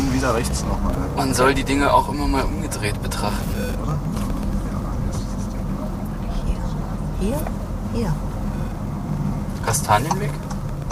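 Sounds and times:
road and engine rumble inside a moving car: 0:00.0 - 0:10.9
speech: 0:00.2 - 0:04.1, 0:07.2 - 0:08.3, 0:09.6 - 0:10.5.

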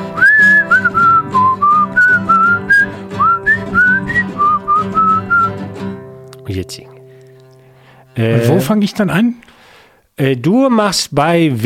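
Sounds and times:
person whistling a wandering melody: 0:00.0 - 0:05.6
speech: 0:06.6 - 0:06.9, 0:08.2 - 0:09.5, 0:10.2 - 0:11.6.

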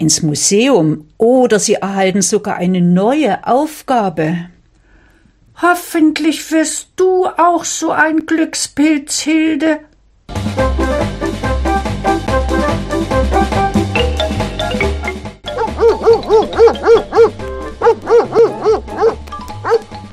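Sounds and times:
speech: 0:00.0 - 0:04.5, 0:05.6 - 0:11.2
music: 0:10.3 - 0:20.1
dog running toward someone barking: 0:15.5 - 0:19.9.

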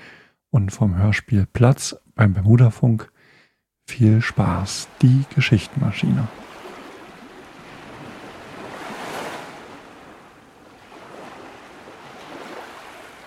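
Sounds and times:
speech: 0:00.5 - 0:03.1, 0:03.9 - 0:06.4
faint wind: 0:03.9 - 0:13.2
sea waves breaking by a small fishing village facing the open sea: 0:04.1 - 0:13.2.

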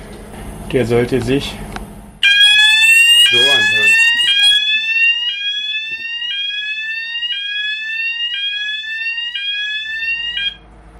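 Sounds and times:
speech: 0:00.7 - 0:01.7
ship bilge high-water alarm with harsh rising electronic tone: 0:02.2 - 0:10.6.

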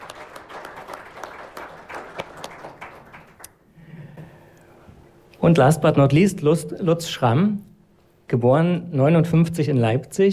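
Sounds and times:
audience applauding: 0:00.0 - 0:03.6
speech: 0:05.4 - 0:07.7, 0:08.3 - 0:10.3.

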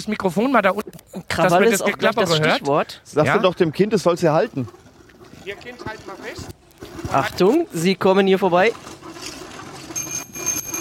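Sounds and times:
speech: 0:00.0 - 0:04.8, 0:05.5 - 0:09.3
small bell ringing on a rail bike: 0:10.0 - 0:10.7.

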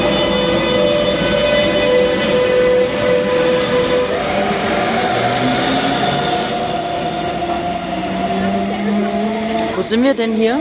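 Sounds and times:
S-Bahn train rumbling by at a railway station: 0:00.0 - 0:10.6
speech: 0:09.9 - 0:10.6.

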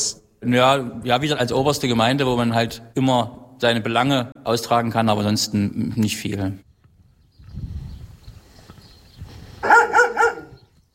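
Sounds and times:
speech: 0:00.4 - 0:06.7
dog barking: 0:09.6 - 0:10.6.

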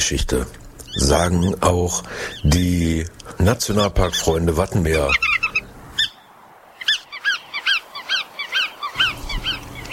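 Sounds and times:
speech: 0:00.0 - 0:05.4
bar-tailed godwit calls: 0:00.8 - 0:09.9.

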